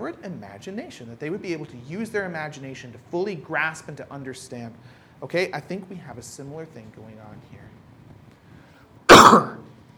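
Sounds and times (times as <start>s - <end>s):
speech: 0.0s - 7.8s
sharp cough: 9.1s - 9.6s.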